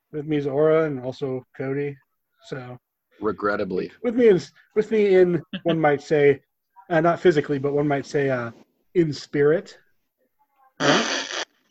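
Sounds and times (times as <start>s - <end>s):
speech: 0.1s - 9.8s, 10.8s - 11.3s
buzzy raspberry fart noise made with the mouth: 10.8s - 11.6s.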